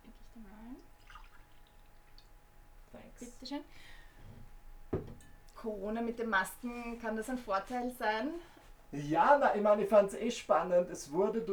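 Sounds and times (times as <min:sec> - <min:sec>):
soft liquid drips: 0:00.0 - 0:02.4
water poured into a glass: 0:01.0 - 0:02.4
speech: 0:03.2 - 0:04.0, 0:05.6 - 0:11.5.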